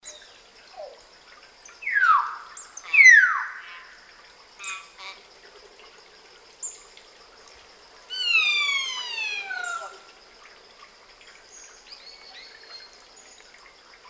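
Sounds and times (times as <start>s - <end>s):
common hill myna Gracula religiosa giving descending whistles and harsh calls: 1.8s - 3.8s, 8.1s - 10.0s.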